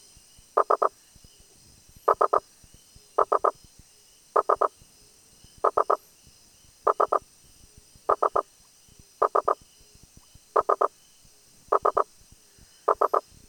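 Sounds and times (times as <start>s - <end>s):
Rosenberg's gladiator frog Boana rosenbergi knocking call: 0.6s - 0.9s, 2.1s - 2.4s, 3.2s - 3.6s, 4.4s - 4.7s, 5.6s - 6.0s, 6.8s - 7.2s, 8.1s - 8.5s, 9.2s - 9.6s, 10.5s - 10.9s, 11.7s - 12.1s, 12.9s - 13.3s.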